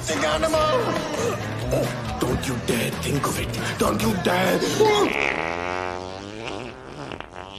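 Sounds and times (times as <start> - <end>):
speech: 0.2 - 5.7
long buzzy fart: 4.7 - 7.5.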